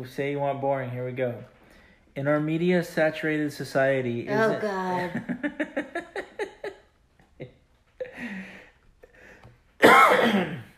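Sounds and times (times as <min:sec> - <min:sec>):
speech: 0:00.0 - 0:01.6, 0:02.2 - 0:05.7
person coughing in a coughing fit: 0:09.8 - 0:10.7
rough throat clearing: 0:09.8 - 0:10.7.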